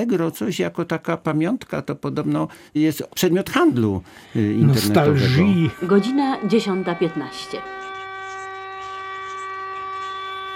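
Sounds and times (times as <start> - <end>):
speech: 0.0 - 7.8
ship and factory sirens wailing in the port of Szczecin: 5.0 - 10.5.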